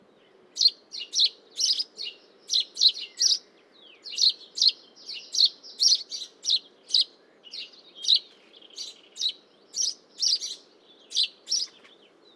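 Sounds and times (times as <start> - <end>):
house sparrow singing: 0.6 - 12.3.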